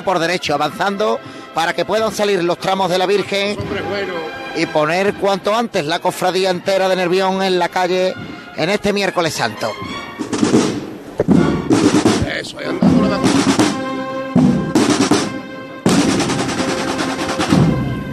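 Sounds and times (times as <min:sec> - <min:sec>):
speech: 0:00.0 - 0:10.6, 0:12.4 - 0:13.6
procession band snare drum rolls at a Holy Wednesday procession in Nervión: 0:10.2 - 0:18.1.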